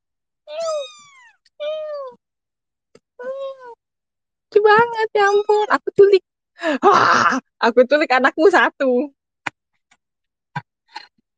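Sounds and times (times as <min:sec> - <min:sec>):
cat meowing: 0:00.5 - 0:02.2, 0:05.2 - 0:05.7
speech: 0:05.0 - 0:09.2.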